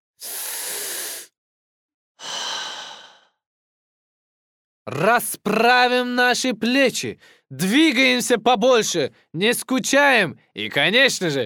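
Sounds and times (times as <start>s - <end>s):
deep breath in and out: 0.2s - 1.4s, 2.2s - 3.4s, 7.2s - 7.5s
speech: 4.9s - 11.4s.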